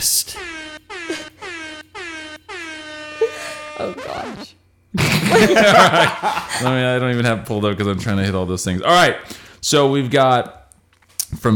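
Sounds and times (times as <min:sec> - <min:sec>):
speech: 0:00.0 - 0:00.9, 0:03.8 - 0:10.6, 0:11.3 - 0:11.5
air horn blasts: 0:00.0 - 0:04.5
laughter: 0:05.0 - 0:06.8.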